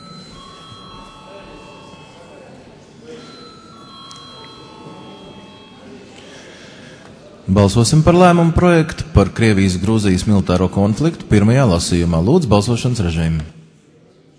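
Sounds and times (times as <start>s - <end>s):
parliament chamber electric bell ringing before vote: 0.0s - 6.1s
low murmur of voices in a large hall: 0.0s - 14.3s
room noise in a large hall: 0.0s - 14.3s
speech: 7.5s - 13.6s.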